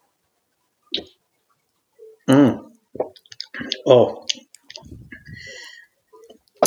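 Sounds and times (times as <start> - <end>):
soft mouth noises: 0.9 - 1.2, 2.0 - 6.6
slurping and swallowing of a drink: 3.0 - 5.6
speech: 3.9 - 4.2.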